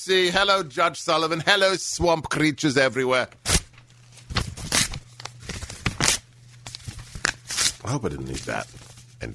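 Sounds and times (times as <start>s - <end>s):
speech: 0.0s - 3.6s, 7.9s - 9.3s
low steady hum: 0.0s - 9.3s
sheet of paper being torn up: 3.4s - 9.2s.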